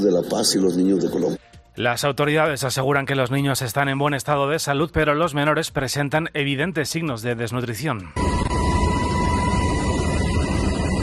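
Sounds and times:
speech: 0.0s - 8.4s
faint high whine of a helicopter: 8.2s - 11.0s
helicopter in flight: 8.2s - 11.0s.

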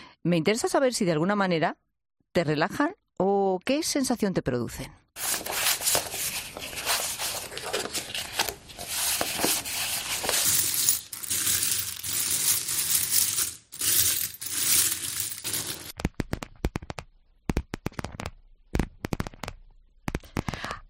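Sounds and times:
speech: 0.2s - 5.5s
coins clinking and sliding together: 5.2s - 16.0s
cards being shuffled: 5.2s - 20.6s.

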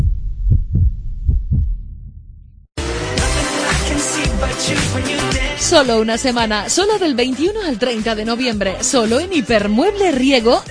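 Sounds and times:
deep heartbeats: 0.0s - 2.7s
loud dense burst of music: 1.5s - 6.7s
speech: 5.7s - 10.7s.

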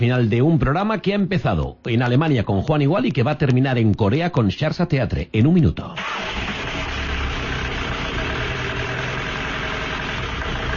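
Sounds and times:
speech: 0.0s - 6.5s
car engine idling with a rough buzzing edge: 6.0s - 10.7s.

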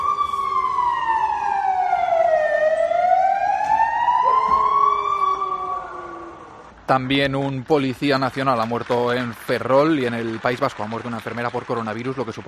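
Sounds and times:
police car sirens sounding in tribute: 0.0s - 7.3s
rumble of traffic: 0.0s - 12.4s
speech: 6.9s - 12.4s.

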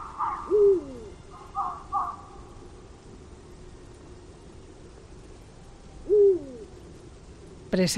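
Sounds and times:
Eurasian eagle-owls hooting at night in an oak wood in winter: 0.0s - 2.7s, 5.7s - 6.8s.

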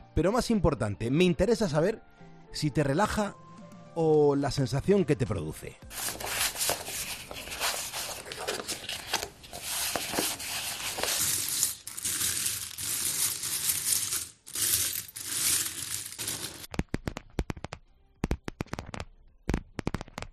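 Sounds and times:
speech: 0.2s - 3.4s, 4.0s - 6.4s
small metallic coins clinking and sliding: 5.9s - 16.7s
playing cards being shuffled: 5.9s - 17.7s.

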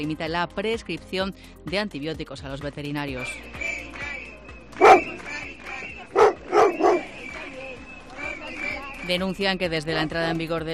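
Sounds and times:
speech: 0.0s - 3.7s, 9.1s - 10.7s
crowd murmur at a protest outdoors: 3.6s - 9.1s
dog barking at a street protest: 4.8s - 7.2s.

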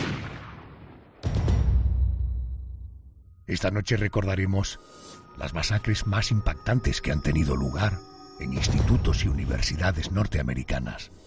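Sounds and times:
single loud gunshot with rumbling tail: 0.0s - 2.3s
speech: 3.5s - 11.2s.

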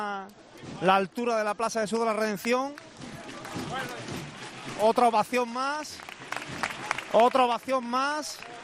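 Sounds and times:
speech: 0.0s - 2.9s, 4.8s - 8.5s
crowd applauding in the rain for a procession float: 2.3s - 8.6s.

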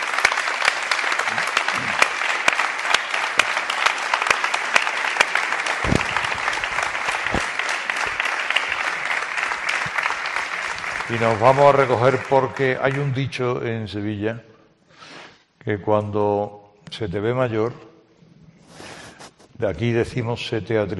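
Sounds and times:
enthusiastic audience applause: 0.0s - 13.2s
speech: 11.1s - 14.5s, 15.6s - 17.9s, 19.6s - 20.9s.

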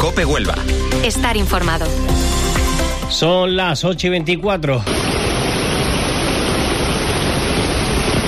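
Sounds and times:
speech: 0.2s - 2.5s, 3.1s - 5.0s
heavy rainfall: 4.9s - 8.2s.

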